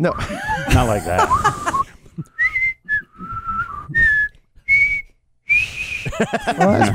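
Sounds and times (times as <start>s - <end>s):
speech: 0.0s - 1.6s, 6.2s - 6.9s
laughter: 0.2s - 2.2s, 6.1s - 6.9s
person whistling a short tune: 1.3s - 6.1s.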